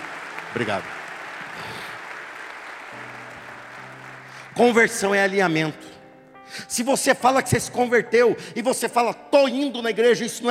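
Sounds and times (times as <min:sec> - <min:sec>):
dense applause from a large audience: 0:00.0 - 0:05.2
speech: 0:00.5 - 0:01.0, 0:04.6 - 0:05.9, 0:06.5 - 0:10.4.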